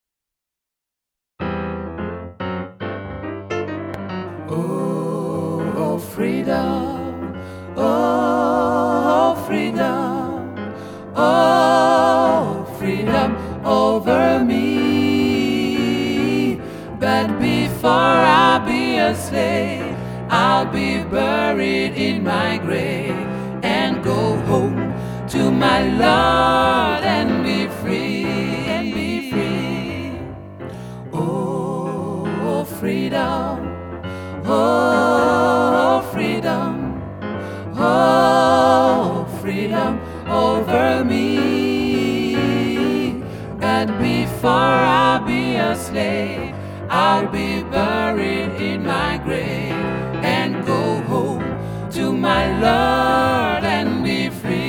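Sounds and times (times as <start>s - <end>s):
gospel ensemble playing tutti: 4.3s - 54.6s.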